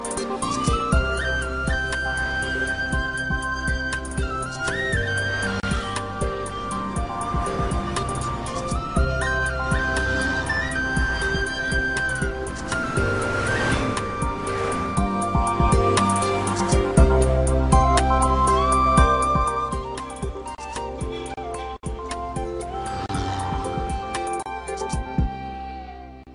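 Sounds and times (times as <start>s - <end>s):
alternative flute tune: 0.0s - 26.3s.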